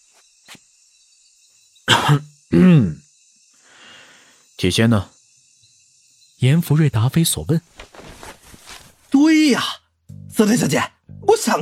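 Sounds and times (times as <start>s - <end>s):
man coughing: 1.9s - 2.9s
speech: 2.1s - 3.0s, 4.6s - 5.1s, 6.4s - 8.0s, 9.4s - 9.8s, 10.4s - 11.6s.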